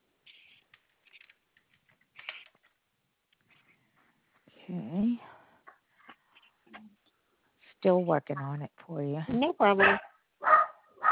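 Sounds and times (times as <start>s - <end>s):
speech: 7.8s - 10.1s
dog barking: 9.8s - 11.0s.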